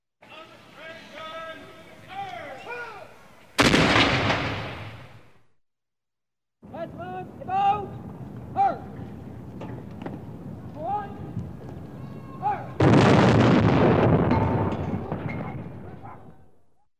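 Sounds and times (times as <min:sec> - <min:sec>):
person shouting an artillery firing command: 0:00.4 - 0:03.2, 0:06.7 - 0:09.0, 0:12.0 - 0:12.8
artillery salvo: 0:03.6 - 0:05.4, 0:12.7 - 0:16.3.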